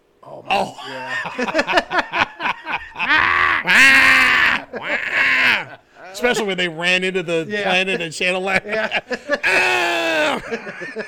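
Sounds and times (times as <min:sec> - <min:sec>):
speech: 0:00.2 - 0:02.2, 0:05.6 - 0:09.8, 0:10.4 - 0:11.0
laughter: 0:00.5 - 0:06.5, 0:07.7 - 0:11.0
goats screaming: 0:02.8 - 0:06.2, 0:09.4 - 0:10.5.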